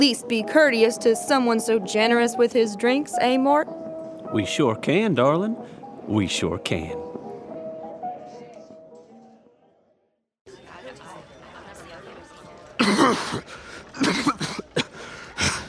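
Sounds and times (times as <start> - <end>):
speech: 0.0 - 7.1, 13.1 - 14.6
man clearing his throat: 12.8 - 15.6
man coughing: 12.8 - 15.6.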